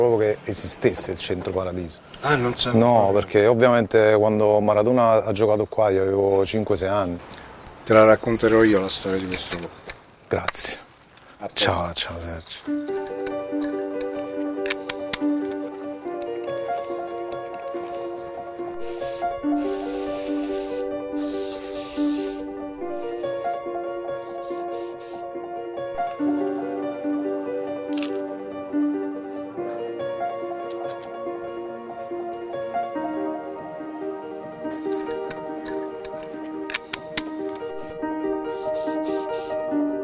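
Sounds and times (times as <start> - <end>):
speech: 0.0 - 10.8, 11.4 - 13.2
tonal music: 12.6 - 40.0
aerosol spray paint can spraying: 18.8 - 26.0, 37.7 - 40.0.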